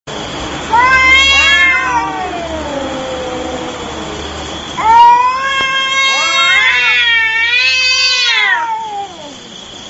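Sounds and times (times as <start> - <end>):
cats meowing and biting each other: 0.6 - 9.5.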